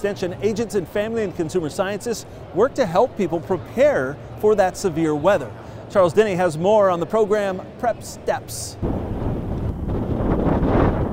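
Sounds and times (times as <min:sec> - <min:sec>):
speech: 0:00.0 - 0:09.1
strong blustery early-spring wind in West Tennessee buffeting the microphone: 0:08.8 - 0:11.1.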